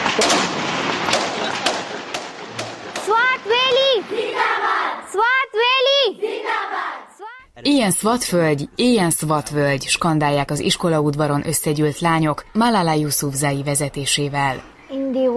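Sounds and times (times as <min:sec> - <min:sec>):
explosions: 0:00.0 - 0:03.7
gunfire: 0:00.0 - 0:04.8
city bustle: 0:00.0 - 0:15.3
speech: 0:00.2 - 0:00.6, 0:07.6 - 0:15.3
loud drawn-out shouting voices: 0:03.0 - 0:07.5.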